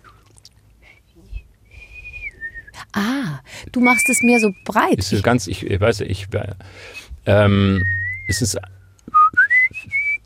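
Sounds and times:
low room rumble: 0.0 - 10.2
person whistling with lips: 0.9 - 2.8, 7.7 - 8.4, 9.1 - 10.2
speech: 3.0 - 8.8.

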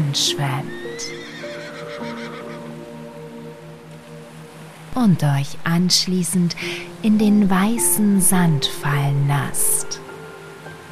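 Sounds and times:
speech: 0.1 - 1.3, 5.0 - 9.8
dark brown unicorns whinnying as a horse neigh effect: 1.0 - 2.7.

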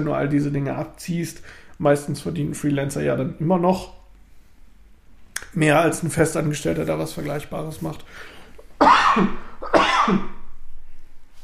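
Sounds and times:
speech: 0.0 - 4.0, 5.5 - 10.4
person coughing: 8.8 - 10.4.

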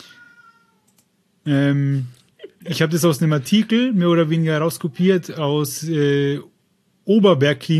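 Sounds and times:
pet cat meowing: 0.0 - 0.9
faint soft noises: 0.0 - 7.7
speech: 1.5 - 6.5, 7.1 - 7.7.

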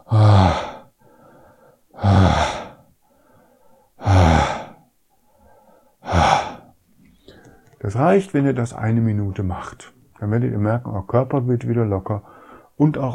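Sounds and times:
deep loud breaths with forceful sighing exhales: 0.0 - 7.8, 12.2 - 12.8
speech: 7.9 - 13.1.

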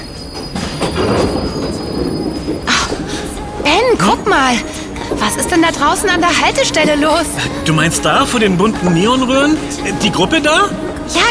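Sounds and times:
subway train high-pitched wheel squeal: 0.0 - 11.2
subway train rumbling along the rails: 0.0 - 11.2
speech: 4.0 - 11.2.

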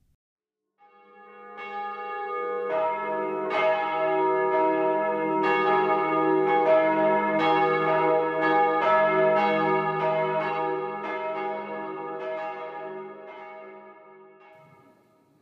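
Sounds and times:
church bells pealing: 0.8 - 15.2.

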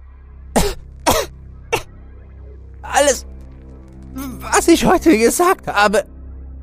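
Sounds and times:
woman coughing harshly while being choked: 0.6 - 1.9
speech: 4.4 - 6.1.

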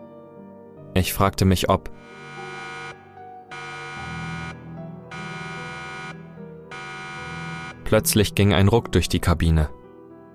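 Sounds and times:
speech: 1.0 - 2.3, 7.9 - 9.8
harsh buzzing submarine alarm blaring: 2.0 - 7.9.

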